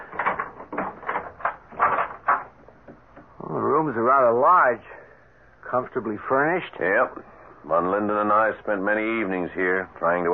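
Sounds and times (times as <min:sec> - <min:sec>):
keys and latch rattling as a door is unlocked and opened: 0:00.0 - 0:03.1
speech: 0:04.2 - 0:05.0, 0:05.7 - 0:10.3.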